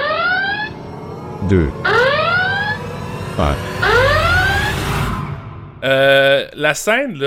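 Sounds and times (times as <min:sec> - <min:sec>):
electronic alarm siren wailing: 0:00.0 - 0:05.8
low rumbling background: 0:00.0 - 0:06.9
speech: 0:01.4 - 0:01.9, 0:03.4 - 0:03.7, 0:05.8 - 0:07.2.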